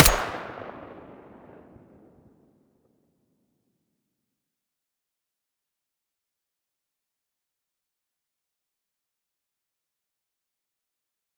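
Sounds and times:
weapon muzzle blast: 0.0s - 1.6s.

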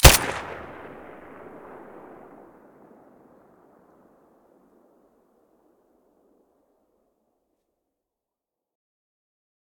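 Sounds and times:
Glock 17 pistol shots with silencer: 0.0s - 2.2s.

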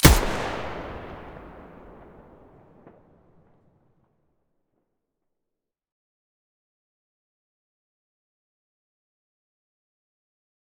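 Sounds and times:
MDR weapon muzzle blast: 0.0s - 3.0s.

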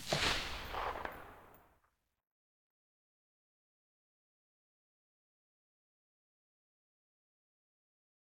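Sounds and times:
silenced gunshot very far: 0.0s - 1.7s.

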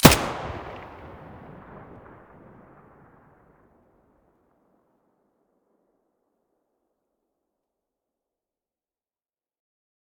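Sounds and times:
MP5 muzzle blast: 0.0s - 2.2s.

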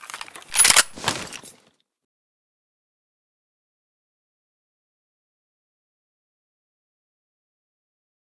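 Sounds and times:
weapon misfire: 0.5s - 1.0s.

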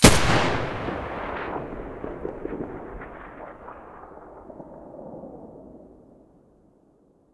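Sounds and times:
assault rifle muzzle gunshot: 0.0s - 4.8s.

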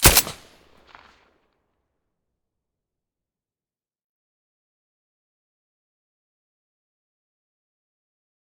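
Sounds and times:
silenced M9A3 pistol gunshot: 0.0s - 1.1s.

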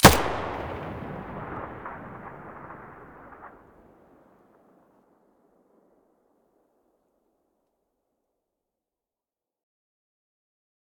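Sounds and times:
weapon muzzle blast: 0.0s - 3.5s.

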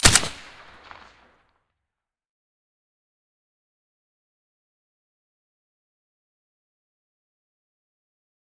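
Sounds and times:
SCAR rifle with silencer shot: 0.0s - 1.2s.

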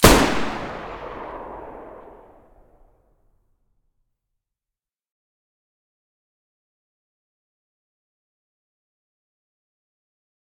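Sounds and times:
Taurus gunshots: 0.0s - 2.6s.

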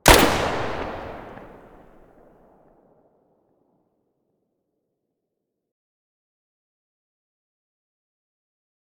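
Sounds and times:
distant weapon muzzle blast in mono: 0.1s - 2.3s.

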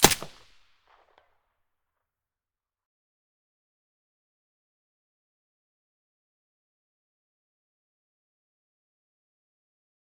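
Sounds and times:
MP5 submachine gun with silencer firing: 0.0s - 0.6s.

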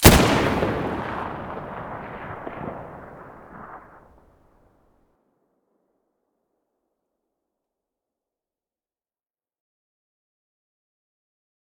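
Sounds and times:
M700 rifle gunshot: 0.0s - 4.2s.

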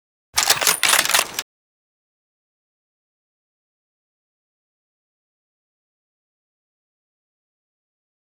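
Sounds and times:
M700 rifle bolt action: 0.4s - 1.4s.

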